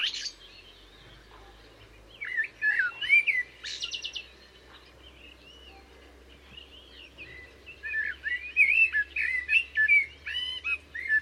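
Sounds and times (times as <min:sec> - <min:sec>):
common blackbird Turdus merula singing: 0:00.0 - 0:11.2.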